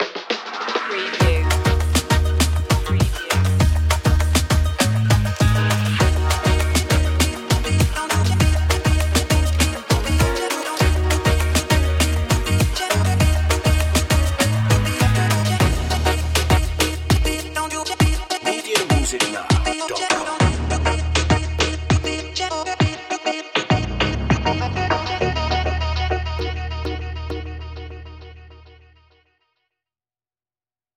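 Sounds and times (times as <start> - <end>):
Jamaica style music: 0.0 - 28.8.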